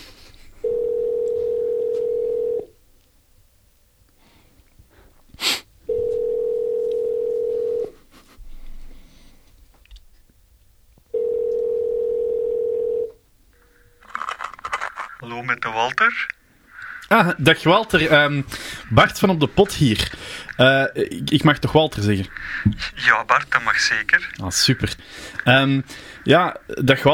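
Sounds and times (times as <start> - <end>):
low rustle: 0.0 - 27.1
ringing tone of an outgoing telephone call: 0.6 - 2.8, 5.9 - 8.0, 11.1 - 14.1
speech: 17.2 - 27.1.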